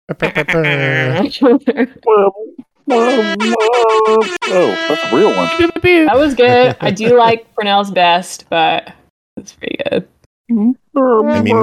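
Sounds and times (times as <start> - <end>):
laughter: 0.1 - 2.3, 2.9 - 7.5, 11.4 - 11.6
speech: 0.1 - 11.6
person imitating air horn: 2.9 - 7.3, 11.2 - 11.6.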